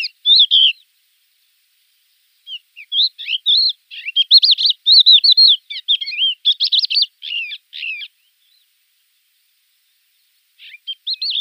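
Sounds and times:
Crested lark singing warbled slurred buzzy notes: 0:00.0 - 0:00.9, 0:02.4 - 0:08.7, 0:10.6 - 0:11.3.

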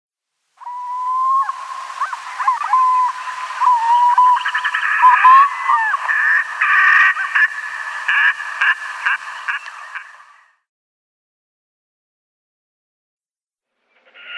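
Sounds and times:
red-necked grebe wailing, braying and chattering: 0:00.6 - 0:10.1.

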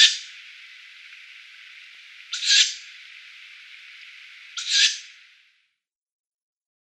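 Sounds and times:
steady background hiss: 0:00.0 - 0:05.8
tawny owl downy young screeching: 0:02.3 - 0:02.8, 0:04.6 - 0:05.1.

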